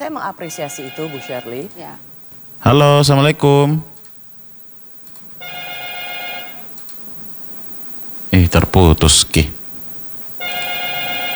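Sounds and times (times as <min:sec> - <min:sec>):
speech: 0:00.1 - 0:03.9, 0:08.5 - 0:09.6
WhatsApp call ringtone: 0:00.4 - 0:01.8, 0:05.4 - 0:06.8, 0:10.4 - 0:11.3.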